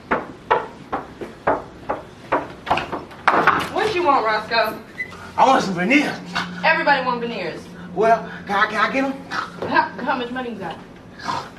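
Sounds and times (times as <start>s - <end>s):
sharp hollow knocks of a door sound effect: 0.0s - 4.0s
speech: 4.0s - 11.4s.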